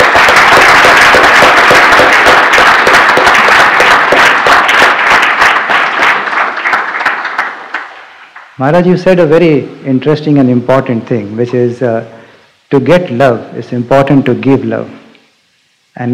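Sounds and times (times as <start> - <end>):
large crowd clapping: 0.0 - 8.6
speech: 8.6 - 15.0, 16.0 - 16.1.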